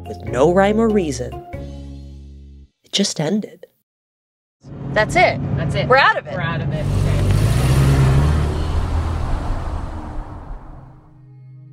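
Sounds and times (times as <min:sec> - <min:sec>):
speech: 0:00.0 - 0:01.6, 0:02.9 - 0:03.7, 0:04.6 - 0:07.2
car engine accelerating away: 0:06.7 - 0:11.2.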